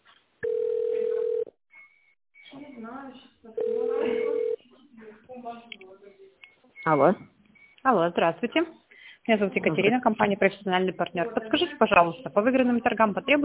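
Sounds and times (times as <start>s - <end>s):
ringing tone of a telephone call being connected: 0.4s - 1.5s, 3.6s - 4.6s
speech: 2.9s - 3.7s, 6.8s - 13.4s
voice: 3.8s - 6.1s.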